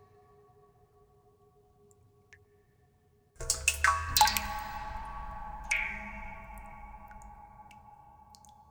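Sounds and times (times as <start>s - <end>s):
dripping drops striking a resonant surface: 3.4s - 7.6s.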